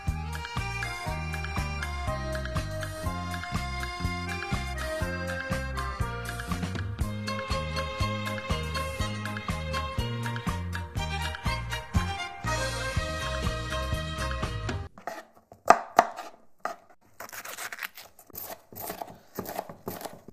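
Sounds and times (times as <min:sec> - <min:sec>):
upbeat music: 0:00.0 - 0:14.9
knife cutting cucumber and green onion into strips on a cutting board: 0:15.0 - 0:20.3.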